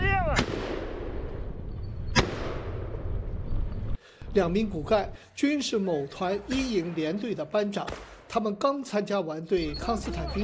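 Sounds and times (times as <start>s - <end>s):
gunfire from a moving vehicle aimed at low-flying targets at a training range: 0.2s - 1.5s, 2.1s - 3.2s, 7.8s - 8.3s
speech: 4.4s - 10.4s.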